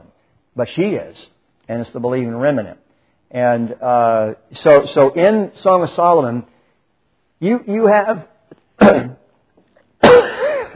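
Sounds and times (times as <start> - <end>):
speech: 0.6 - 6.5, 7.4 - 9.2
person coughing: 8.8 - 9.2, 10.0 - 10.7.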